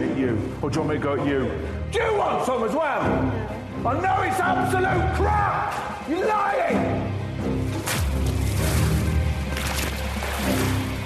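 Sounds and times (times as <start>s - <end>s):
speech: 0.2s - 8.1s
water splashing and sloshing: 7.6s - 11.0s.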